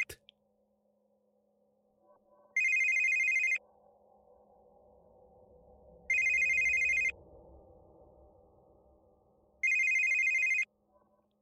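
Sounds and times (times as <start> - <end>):
phone ringing with high warbling electronic trills: 2.6 - 3.6, 6.1 - 7.1, 9.6 - 10.6.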